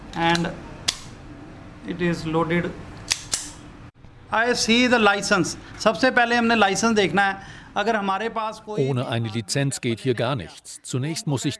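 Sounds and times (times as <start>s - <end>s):
speech: 0.2s - 0.7s, 1.8s - 2.9s, 4.3s - 11.5s
pistol being loaded with a 7-shot magazine in a gun shop: 3.1s - 3.6s.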